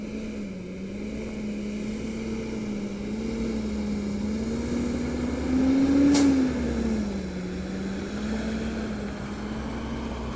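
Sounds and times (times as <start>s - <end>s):
heavy diesel engines of garbage trucks droning at a landfill: 0.0s - 10.3s.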